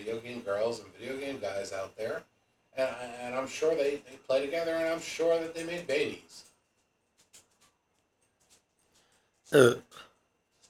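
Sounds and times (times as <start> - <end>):
speech: 0.0 - 6.5, 9.5 - 10.1
belch: 9.6 - 10.0
shorter softer second burp: 9.6 - 10.0.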